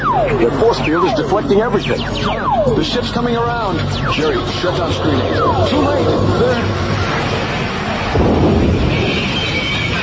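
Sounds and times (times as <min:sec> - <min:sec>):
speech: 0:00.2 - 0:07.5
heavy rumbling thunder roll: 0:06.0 - 0:10.0
loud lightning strike crash: 0:07.1 - 0:10.0.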